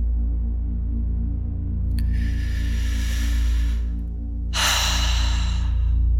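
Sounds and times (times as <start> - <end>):
steady low drone: 0.0 - 6.1
deep inhale and exhale breathing: 2.0 - 6.1.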